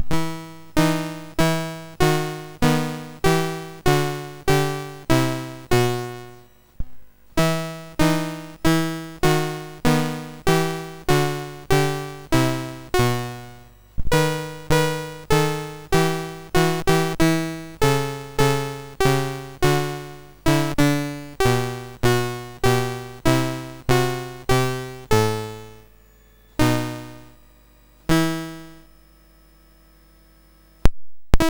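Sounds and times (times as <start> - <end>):
minuet on MOS6581R3 sound chip: 0.0 - 6.5, 7.4 - 25.9.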